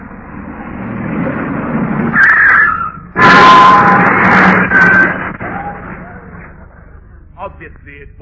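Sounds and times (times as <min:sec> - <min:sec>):
car engine rumbling as the car approaches: 0:00.0 - 0:08.2
brief high squealing tones: 0:01.2 - 0:06.9.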